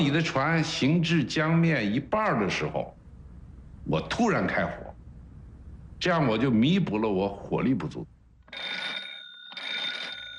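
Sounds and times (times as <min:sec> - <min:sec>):
speech: 0:00.0 - 0:03.0, 0:03.8 - 0:04.9, 0:06.0 - 0:08.8
telephone ringing: 0:08.5 - 0:10.3.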